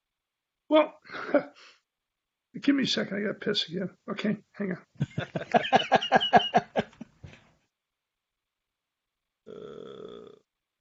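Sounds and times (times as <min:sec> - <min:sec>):
speech: 0:00.7 - 0:01.8, 0:02.6 - 0:06.6
rhythmic laughter-like bursts: 0:05.0 - 0:07.3
drawn-out burp: 0:09.5 - 0:10.5.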